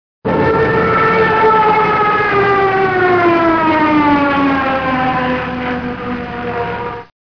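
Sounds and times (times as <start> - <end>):
Stuka aircraft sounds: 0.2 - 7.1.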